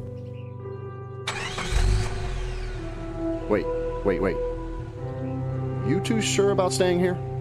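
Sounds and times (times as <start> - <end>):
truck engine cranking, idling and revving as it pulls away: 1.3 - 5.6
speech: 3.5 - 4.5, 5.9 - 7.3.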